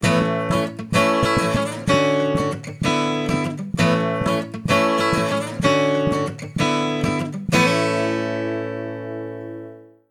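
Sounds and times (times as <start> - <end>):
guitar ringtone on a mobile phone: 0.0 - 10.0.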